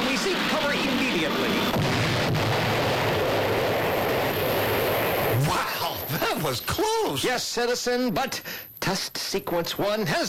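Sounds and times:
missile explosion with roaring rumble: 0.0 - 6.2
sharp crack of a missile explosion: 0.0 - 6.3
speech: 6.5 - 10.2.

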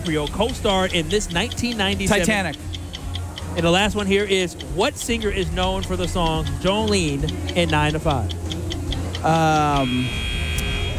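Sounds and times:
speech: 0.0 - 2.8, 3.5 - 8.5, 9.2 - 10.2
quiz-game buzzer during a radio quiz: 9.8 - 10.9.

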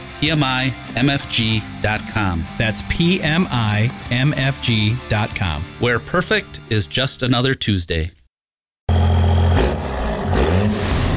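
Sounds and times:
speech: 0.2 - 8.2
heavy diesel truck engine starting up and revving: 8.9 - 11.1.

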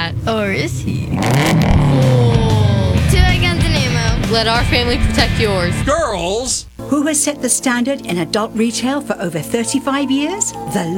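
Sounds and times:
sponsored race car engine revving: 0.0 - 6.8
speech: 0.2 - 1.4, 4.4 - 10.9.

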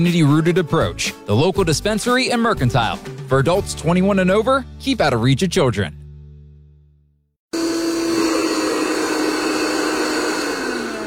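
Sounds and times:
speech: 0.0 - 6.0
vacuum cleaner running: 7.5 - 11.0.

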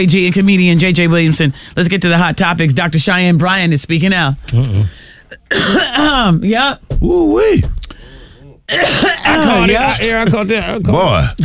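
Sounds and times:
speech: 0.0 - 7.8, 8.7 - 11.4
person clearing throat loudly: 4.5 - 6.0, 8.7 - 9.7
person coughing in a harsh strained fit: 4.6 - 6.1, 8.7 - 9.8.

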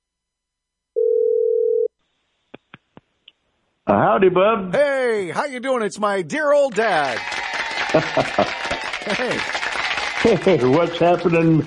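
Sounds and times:
telephone ringback tone: 1.0 - 1.9
speech: 3.9 - 9.6, 10.2 - 11.6
laughter: 7.7 - 11.6.

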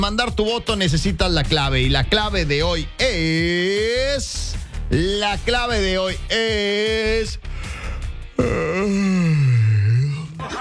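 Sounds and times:
speech: 0.0 - 7.5, 8.4 - 9.3
person yawning: 7.6 - 10.4.

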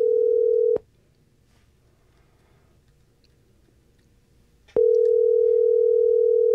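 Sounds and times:
telephone ringback tone of an unanswered outgoing call: 0.0 - 0.8, 4.8 - 6.5.

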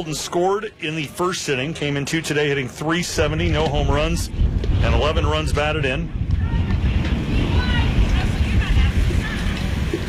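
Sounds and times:
speech: 0.0 - 6.2
gusty wind blowing across a baseball field during a game: 2.5 - 10.0.

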